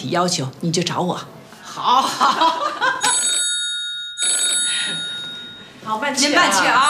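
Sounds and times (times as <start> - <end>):
speech: 0.0 - 2.5, 5.9 - 6.8
laughter: 1.8 - 3.4
telephone ringing: 2.9 - 6.8.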